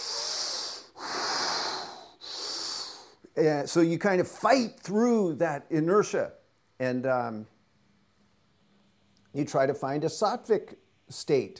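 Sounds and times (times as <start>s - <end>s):
forceful audible yoga breathing technique: 0.0s - 3.3s
speech: 3.4s - 7.5s, 9.3s - 11.5s.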